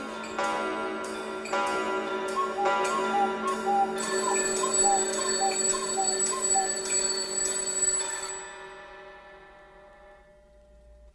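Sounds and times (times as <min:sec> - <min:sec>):
bright bell-like chimes imitating a clock's ding-dong in music: 0:00.2 - 0:10.4
sustained musical tones: 0:02.2 - 0:06.9.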